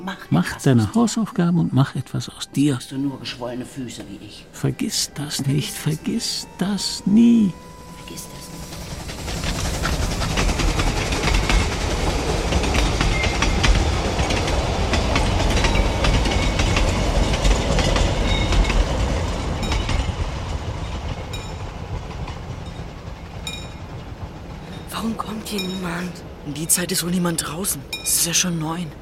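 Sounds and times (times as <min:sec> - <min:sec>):
speech: 0:00.0 - 0:08.8, 0:25.5 - 0:29.0
train passing: 0:00.0 - 0:29.0
train wheels clacking over rail joints: 0:08.4 - 0:26.4.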